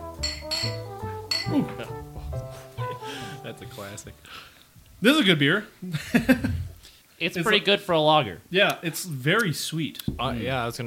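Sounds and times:
glasses of Vienna-style lager clinking in a toast: 0.2s - 1.9s
speech: 1.5s - 1.9s, 3.8s - 10.8s
laughter: 1.5s - 2.0s, 5.8s - 6.8s.

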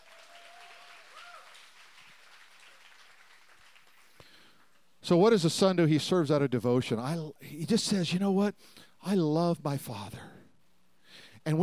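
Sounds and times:
audience courtesy applause: 0.0s - 4.8s
speech: 5.1s - 10.4s, 11.4s - 11.6s.

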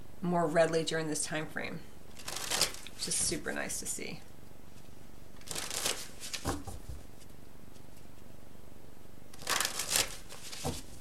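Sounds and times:
speech: 0.2s - 1.9s, 3.0s - 4.3s
deck of cards shuffled for a card reading: 2.1s - 3.0s, 4.8s - 8.3s, 9.4s - 10.9s.

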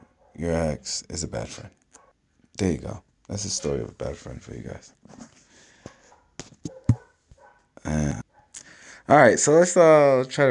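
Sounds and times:
dogs barking: 0.0s - 0.5s, 1.9s - 2.2s, 3.5s - 3.9s, 5.8s - 8.6s
speech: 0.4s - 1.8s, 2.6s - 5.3s, 9.1s - 10.4s.

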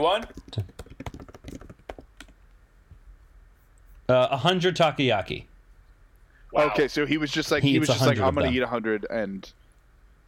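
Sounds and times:
speech: 0.0s - 0.7s, 4.1s - 5.5s, 6.5s - 9.6s
typing on a computer keyboard: 0.2s - 2.4s.

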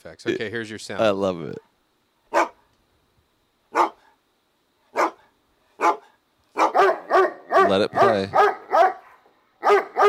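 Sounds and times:
speech: 0.0s - 1.7s, 7.7s - 8.6s
dog barking: 2.3s - 2.6s, 3.7s - 4.2s, 4.9s - 10.0s.

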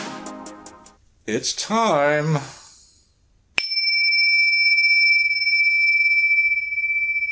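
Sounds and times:
speech: 1.3s - 2.6s
small bell struck and ringing: 3.6s - 7.3s.

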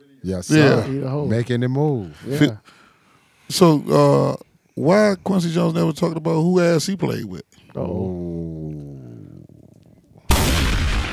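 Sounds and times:
speech: 0.2s - 2.8s, 3.5s - 8.1s
bomb explosion sound effect: 10.3s - 11.1s.

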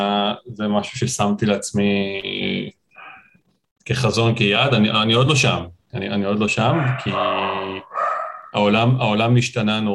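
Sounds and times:
speech: 0.0s - 2.8s, 3.9s - 7.8s, 8.5s - 9.9s
dog grunting: 6.6s - 8.6s.

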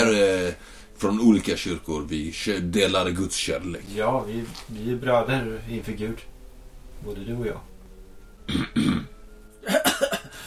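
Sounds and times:
speech: 0.1s - 6.3s, 7.0s - 7.7s, 8.5s - 9.8s
man clearing his throat: 8.5s - 10.3s.

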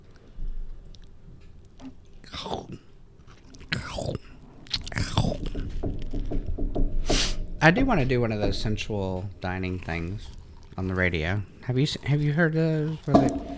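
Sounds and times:
cookie crunching: 0.0s - 6.4s, 8.0s - 13.5s
moist mouth sounds: 0.9s - 6.2s, 8.4s - 13.5s
speech: 7.6s - 13.5s.

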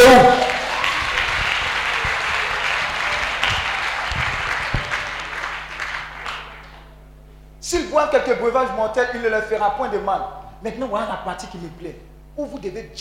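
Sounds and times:
church congregation applauding: 0.0s - 7.0s
speech: 8.0s - 12.9s.

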